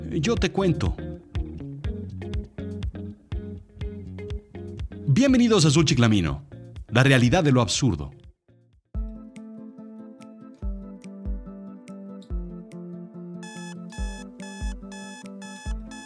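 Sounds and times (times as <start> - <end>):
speech: 0.1 - 1.1, 5.2 - 8.2
alarm clock ringing with a repeating electronic melody: 13.5 - 16.0.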